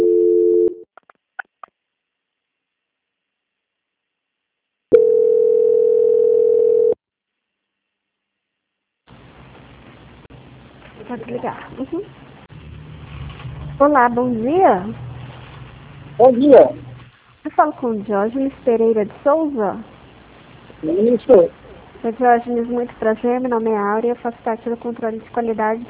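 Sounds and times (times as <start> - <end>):
telephone line tones during a bank call transfer: 0.0 - 0.8, 4.9 - 7.0
speech: 11.3 - 12.2, 13.8 - 15.1, 16.2 - 20.0, 20.8 - 25.8.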